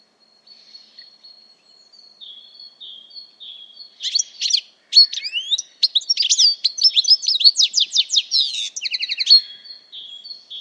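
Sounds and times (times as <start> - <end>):
bird calling: 2.2 - 10.5.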